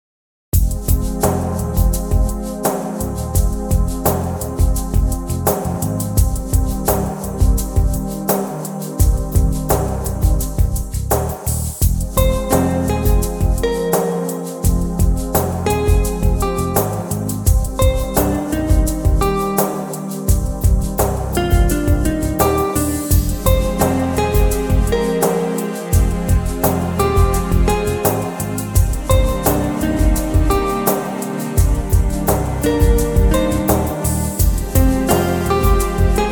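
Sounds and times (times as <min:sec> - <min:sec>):
documentary background music: 0:00.6 - 0:36.3.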